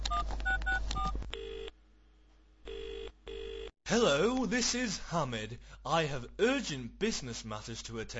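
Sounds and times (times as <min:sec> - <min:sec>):
electronic telephone keypad dialing tones: 0:00.0 - 0:01.7
long steady telephone ringing tones: 0:00.1 - 0:01.7, 0:02.7 - 0:03.7
speech: 0:03.9 - 0:08.1.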